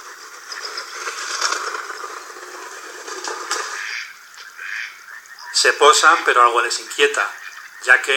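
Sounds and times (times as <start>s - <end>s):
pair of mallards quacking raspily: 3.5s - 8.1s
speech: 5.6s - 8.1s.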